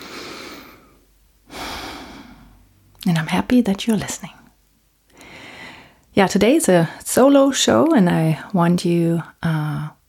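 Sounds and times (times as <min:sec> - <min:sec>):
deep breathing during a calming spoken introduction: 0:00.0 - 0:02.8, 0:05.1 - 0:06.1
speech: 0:03.0 - 0:04.4, 0:06.2 - 0:09.9.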